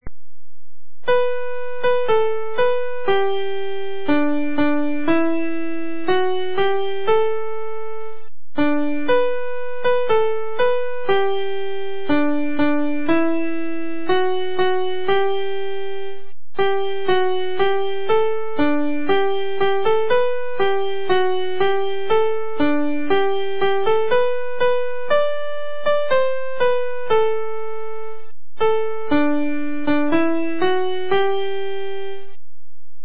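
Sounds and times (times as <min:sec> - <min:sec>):
piano song: 0:01.0 - 0:32.4.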